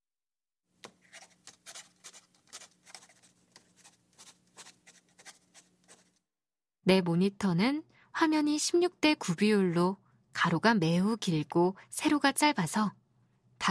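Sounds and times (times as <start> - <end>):
pen writing on blank paper: 0.8 - 6.2
speech: 6.9 - 13.0.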